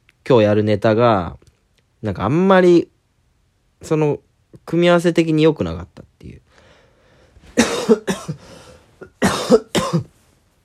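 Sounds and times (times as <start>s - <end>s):
speech: 0.3s - 1.4s, 2.0s - 2.9s, 3.8s - 6.4s, 7.6s - 8.6s
person coughing: 7.5s - 10.2s.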